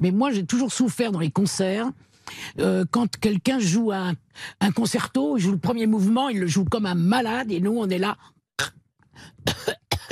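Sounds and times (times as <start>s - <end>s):
speech: 0.0s - 10.0s
person coughing harshly: 9.4s - 10.0s.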